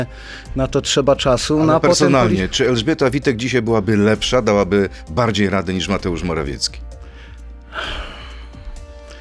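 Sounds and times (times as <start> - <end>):
speech: 0.0 - 6.9, 7.7 - 8.0
deep audible breath inhale close to the microphone: 0.1 - 0.5, 6.9 - 9.1.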